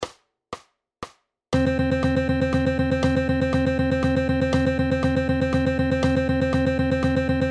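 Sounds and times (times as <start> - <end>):
sixteenth notes in three-four time: 1.6 - 7.5.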